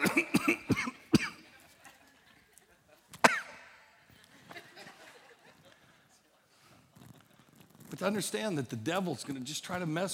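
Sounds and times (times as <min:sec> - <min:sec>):
person coughing: 0:00.0 - 0:01.5, 0:03.2 - 0:03.8
laughter: 0:01.5 - 0:03.2, 0:04.1 - 0:06.4
breathy sounds: 0:05.8 - 0:07.0
speech: 0:08.0 - 0:10.1.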